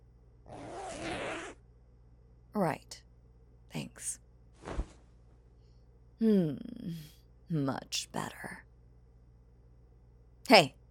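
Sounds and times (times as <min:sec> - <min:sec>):
quiet low hum: 0:00.0 - 0:00.6, 0:01.6 - 0:10.8
clothing zipper being unzipped: 0:00.5 - 0:01.6
speech: 0:06.2 - 0:08.7, 0:10.5 - 0:10.8.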